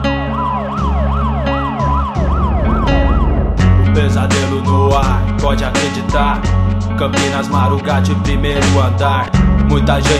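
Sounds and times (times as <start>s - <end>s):
ambulance siren wailing: 0.0s - 4.4s
heavy rumbling vehicle engine: 2.0s - 5.5s
speech: 5.0s - 10.1s.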